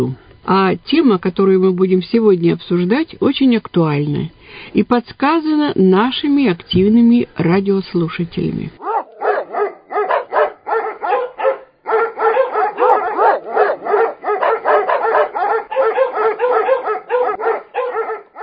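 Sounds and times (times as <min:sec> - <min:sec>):
speech: 0:00.0 - 0:08.8
several dogs barking: 0:08.8 - 0:18.4.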